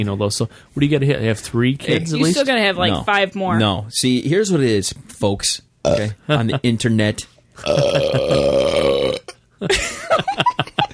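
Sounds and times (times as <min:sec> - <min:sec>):
speech: 0:00.0 - 0:10.9
loud rumbling burp: 0:07.6 - 0:09.4.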